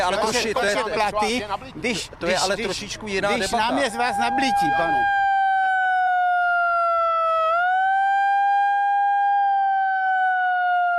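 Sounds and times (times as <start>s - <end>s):
speech: 0.1s - 5.2s
small portable handheld siren wailing: 3.5s - 10.9s.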